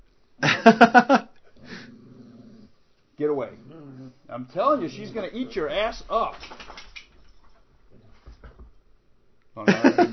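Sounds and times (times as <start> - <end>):
laughter: 0.4 - 1.3, 9.6 - 10.1
speech: 0.6 - 1.2, 4.3 - 6.6
dog growling whimper: 3.6 - 4.3.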